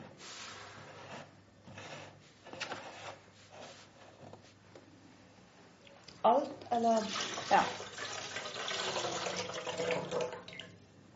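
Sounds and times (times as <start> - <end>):
speech: 6.2 - 8.0, 9.0 - 10.4
water pouring from a carton into a jug: 6.9 - 10.8.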